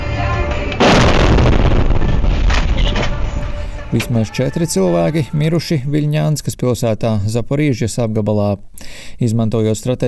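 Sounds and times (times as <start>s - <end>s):
missile-strike explosion recorded by a car dashcam in Dnipro Ukraine: 0.0s - 4.1s
crackling bursts: 0.0s - 5.9s
steady road rumble: 0.0s - 6.0s
speech: 3.9s - 10.0s.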